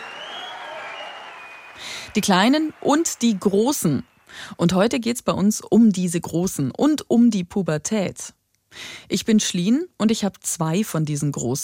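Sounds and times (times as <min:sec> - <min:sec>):
applause from a group of people: 0:00.0 - 0:04.4
speech: 0:02.1 - 0:11.6.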